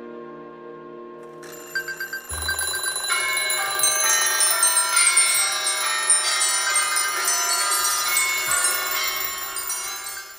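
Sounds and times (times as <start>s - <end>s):
many alarm clocks ringing: 1.4s - 10.3s.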